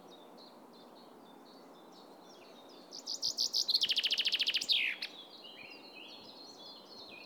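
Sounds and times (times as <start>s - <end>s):
Common chaffinch Fringilla coelebs song: 3.0s - 5.8s.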